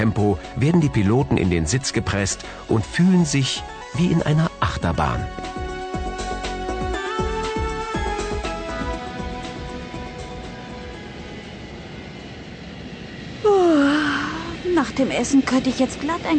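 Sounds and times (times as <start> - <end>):
speech: 0.0 - 5.6, 15.0 - 16.3
sweeping tone: 5.5 - 16.3
jet engine roar inside a passenger airplane cabin: 6.9 - 16.3.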